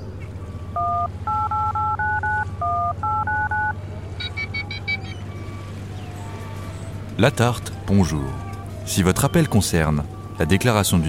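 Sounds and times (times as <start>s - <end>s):
constant low engine-like hum: 0.0s - 11.0s
telephone keypad beeps dialing a number: 0.8s - 5.6s
brief higher electronic tones: 0.8s - 9.8s
speech: 7.2s - 11.0s.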